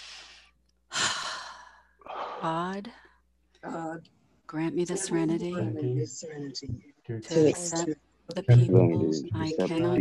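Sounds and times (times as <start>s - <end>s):
deep breath: 0.0s - 0.6s, 1.4s - 2.4s
speech: 2.4s - 10.0s.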